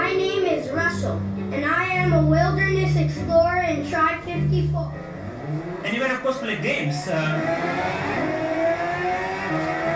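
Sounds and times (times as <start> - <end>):
speech: 0.1 - 8.7
racing game car engine revving at a high pitch: 4.1 - 9.9.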